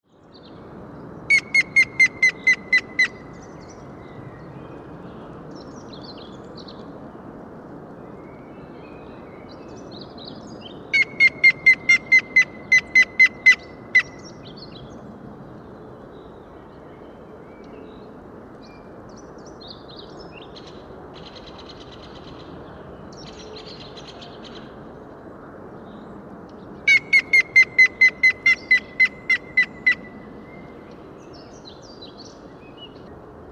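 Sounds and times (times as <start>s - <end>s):
grey-headed woodpecker calling: 1.3s - 3.2s, 10.9s - 14.2s, 26.9s - 30.0s.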